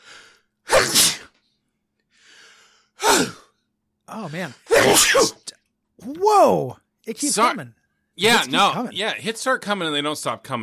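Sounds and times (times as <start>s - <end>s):
loud explosive sneezes: 0.7s - 1.4s, 3.0s - 3.5s, 4.6s - 5.5s
speech: 4.2s - 10.6s.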